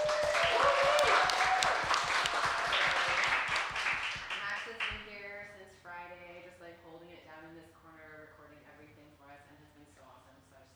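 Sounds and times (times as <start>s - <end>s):
crowd applauding: 0.0s - 5.0s.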